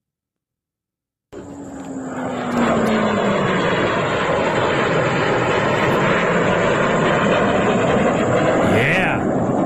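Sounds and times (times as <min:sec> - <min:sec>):
joint strike fighter jet engine roar: 0:01.3 - 0:09.6.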